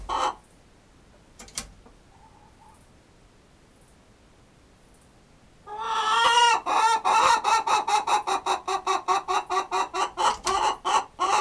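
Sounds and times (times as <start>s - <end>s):
chicken clucking loudly and harshly: 0.0s - 0.5s, 5.7s - 11.3s.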